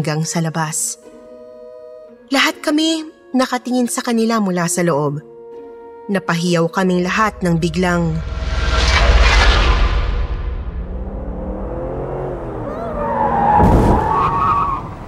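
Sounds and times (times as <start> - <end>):
speech: 0.0 - 1.2, 2.3 - 5.3, 6.1 - 8.4
truck impact running over a woman outside a McDonald's store: 7.3 - 11.8
truck skidding with wavering tire squeals: 12.5 - 15.0.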